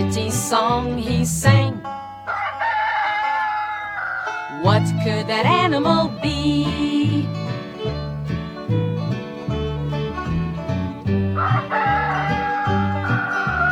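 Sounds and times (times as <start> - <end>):
bouncy steady musical backing with a thumping bass line: 0.0 - 2.0, 4.6 - 13.7
speech: 0.3 - 2.4, 4.7 - 7.4
rooster crowing: 2.2 - 4.6, 11.4 - 13.7.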